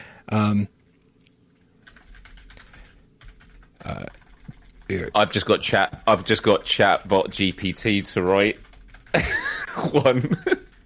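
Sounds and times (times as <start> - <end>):
speech: 0.3 - 0.8, 3.8 - 4.2, 4.9 - 8.6, 9.9 - 10.5
typing on a computer keyboard: 1.8 - 9.2, 10.4 - 10.8
laughter: 9.1 - 10.7.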